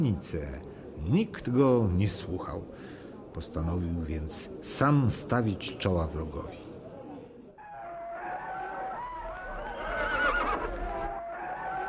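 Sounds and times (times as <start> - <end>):
speech: 0.0 - 6.6
horse whinnying loudly: 7.6 - 11.8.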